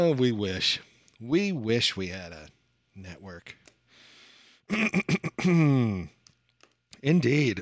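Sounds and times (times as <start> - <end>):
speech: 0.2 - 3.6, 4.7 - 6.2, 7.0 - 7.5
person clearing throat: 4.7 - 6.1.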